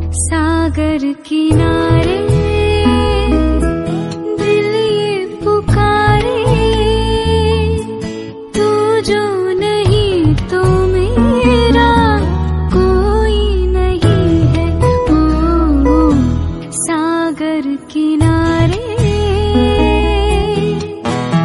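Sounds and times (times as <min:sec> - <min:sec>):
woman singing a sad Hindi song: 0:00.1 - 0:21.3.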